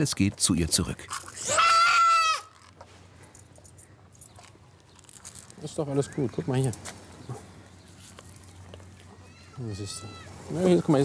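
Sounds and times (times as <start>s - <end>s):
speech: 0.0s - 1.6s, 5.6s - 7.4s, 9.6s - 11.0s
young goat kid bleating: 1.4s - 2.5s.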